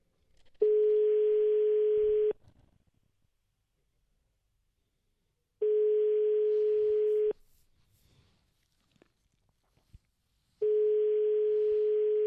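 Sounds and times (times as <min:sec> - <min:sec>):
telephone ringback tone while calling a number: 0:00.6 - 0:02.4, 0:05.6 - 0:07.4, 0:10.6 - 0:12.2.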